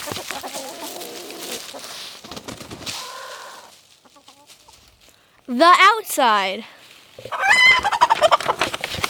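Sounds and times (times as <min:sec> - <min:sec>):
chickens clucking: 0:00.0 - 0:05.0, 0:07.1 - 0:09.0
speech: 0:05.5 - 0:07.4.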